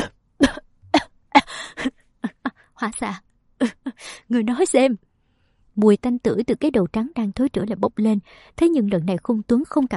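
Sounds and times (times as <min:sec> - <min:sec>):
person in a violent coughing fit: 0:00.0 - 0:01.5
speech: 0:02.8 - 0:05.0, 0:05.8 - 0:09.9.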